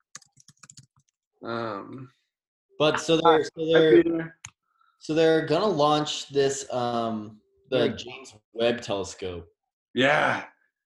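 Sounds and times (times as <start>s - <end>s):
typing on a computer keyboard: 0.0s - 1.2s
speech: 1.4s - 2.2s, 2.8s - 4.4s, 5.0s - 10.8s.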